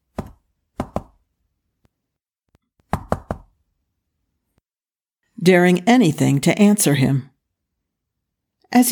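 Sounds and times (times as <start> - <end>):
knuckles rapping on wooden doors: 2.9 - 3.6
speech: 5.5 - 7.3.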